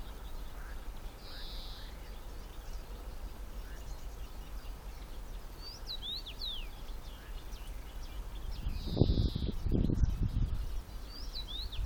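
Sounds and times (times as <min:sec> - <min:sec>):
common rosefinch calls with short curving whistled notes: 0:00.0 - 0:02.8, 0:03.6 - 0:10.1, 0:11.0 - 0:11.8
steady low rumble of wind: 0:08.3 - 0:11.8.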